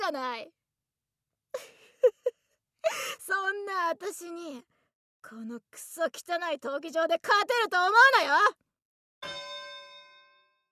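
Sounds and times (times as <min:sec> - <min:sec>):
speech: 0:00.1 - 0:00.6, 0:02.9 - 0:08.6, 0:09.2 - 0:09.5
single bell strike signalling the start of a match in an arena: 0:09.2 - 0:10.7.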